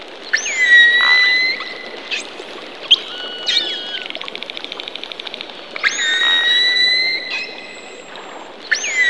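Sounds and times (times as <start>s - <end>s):
dolphin whistles underwater: 0.3s - 2.2s, 2.9s - 4.1s, 5.8s - 8.1s, 8.7s - 9.0s.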